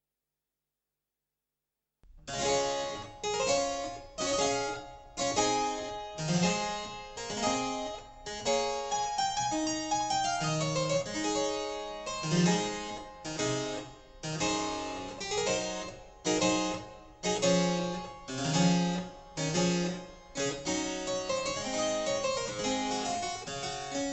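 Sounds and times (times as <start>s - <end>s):
harpsichord: 2.4s - 24.1s.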